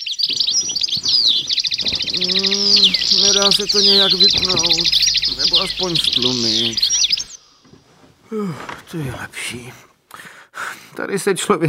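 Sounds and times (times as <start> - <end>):
gentle morning birdsong with chirps and trills: 0.0 - 7.8
soft sustained bird warbling note: 1.9 - 7.4
speech: 2.2 - 6.9, 8.3 - 9.9, 11.0 - 11.6.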